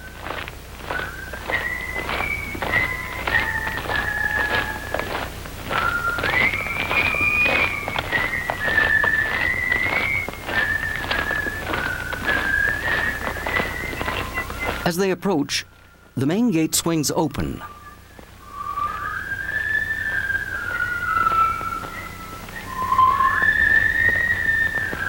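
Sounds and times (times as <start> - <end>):
soldiers marching in step: 0.0 - 16.2, 17.4 - 25.0
prisoners of war whistling a tune together: 0.0 - 16.7, 17.3 - 25.0
speech: 14.9 - 17.7.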